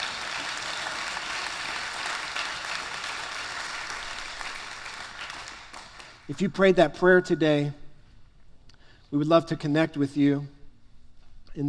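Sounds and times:
audience clapping hands in dense applause: 0:00.0 - 0:06.3
speech: 0:06.3 - 0:07.8, 0:09.1 - 0:10.6.

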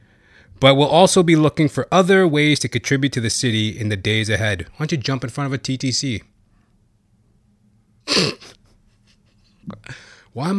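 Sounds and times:
speech: 0:00.6 - 0:06.3, 0:08.1 - 0:08.6, 0:09.7 - 0:10.5
person sneezing: 0:08.0 - 0:08.6.

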